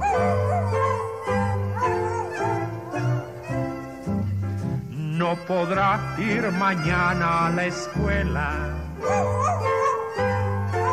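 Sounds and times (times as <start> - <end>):
dog with an aching tooth howling: 0.0 - 3.8, 9.0 - 10.9
musical accompaniment: 0.0 - 10.9
speech: 5.3 - 9.7.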